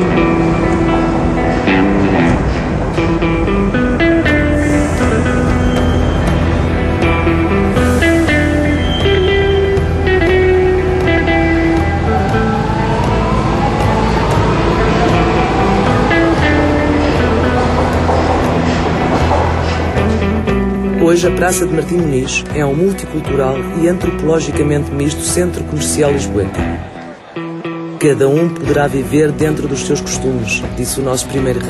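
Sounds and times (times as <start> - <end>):
trains rumbling at a Lisbon metro station: 0.1 - 20.9
speech: 21.2 - 26.7, 28.0 - 31.6.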